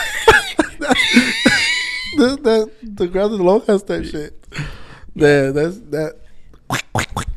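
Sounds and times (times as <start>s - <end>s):
laughter: 0.0s - 2.6s
speech: 2.2s - 7.3s
person imitating a duck quack: 6.7s - 7.3s.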